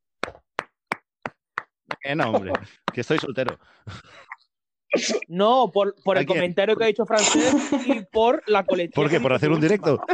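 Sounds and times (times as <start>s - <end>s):
sharp hand claps: 0.2s - 3.7s
speech: 2.0s - 4.3s, 4.9s - 10.1s
laughter: 7.2s - 10.1s.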